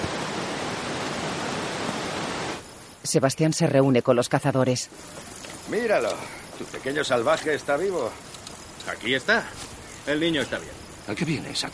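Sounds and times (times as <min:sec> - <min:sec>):
river rushing beside a mountain trail: 0:00.0 - 0:02.8
speech: 0:03.0 - 0:11.7.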